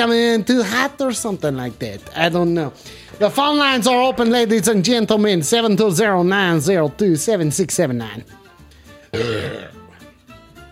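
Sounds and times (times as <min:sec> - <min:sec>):
speech: 0:00.0 - 0:08.4, 0:09.1 - 0:09.8
loud low rumbling belch: 0:09.1 - 0:10.0.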